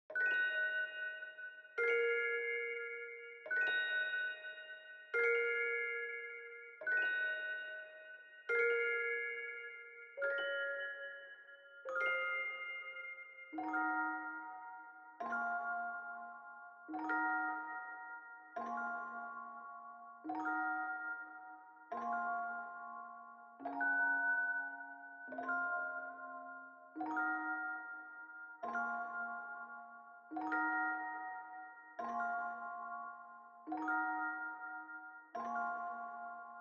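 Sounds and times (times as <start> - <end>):
143 BPM A# minor bell hip hop melody loop: 0.1 - 36.5.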